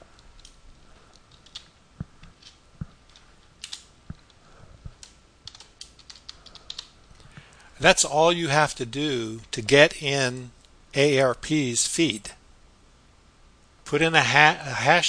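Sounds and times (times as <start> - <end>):
typing on a computer keyboard: 1.3 - 1.7, 5.0 - 6.9
speech: 7.8 - 12.4, 13.9 - 15.0.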